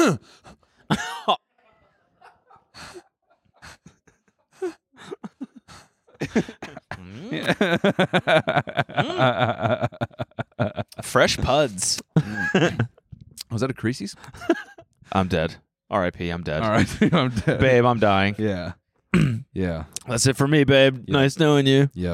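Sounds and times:
person gasping: 0.0 - 0.9, 2.7 - 7.5
speech: 0.0 - 1.4, 6.2 - 22.1
person faking a coughing fit: 0.9 - 1.4, 5.0 - 7.7, 19.2 - 19.5
laughter: 0.9 - 13.0, 14.2 - 15.3, 16.6 - 18.3.

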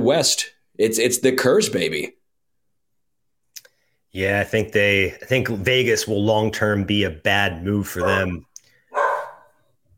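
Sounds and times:
speech: 0.0 - 2.2, 4.1 - 8.5
small dog barking: 8.0 - 9.6.

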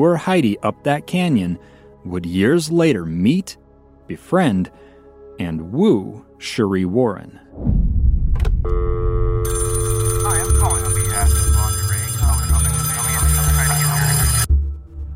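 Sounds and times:
speech: 0.0 - 7.8, 8.6 - 8.9
telephone ringing with an electronic trill: 8.7 - 14.5
voices: 10.2 - 14.4.

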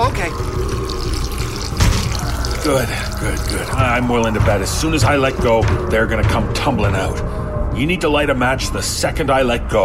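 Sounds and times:
gasoline poured around a door in a splashing stream: 0.0 - 6.4
speech: 2.7 - 9.8.

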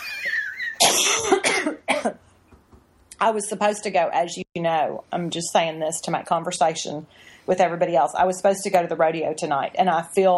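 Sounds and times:
person coughing: 0.8 - 2.2
speech: 1.2 - 2.2, 3.2 - 10.3.

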